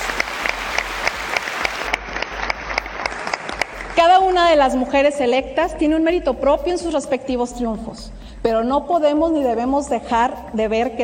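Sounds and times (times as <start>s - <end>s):
applause from a sizable audience: 0.0s - 4.0s
speech: 4.0s - 11.0s.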